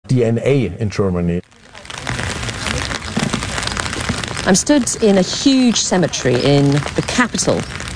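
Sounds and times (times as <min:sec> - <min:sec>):
speech: 0:00.1 - 0:01.8, 0:04.4 - 0:07.9
rain falling in a war graves cemetery in Magdeburg, Germany: 0:00.1 - 0:07.9.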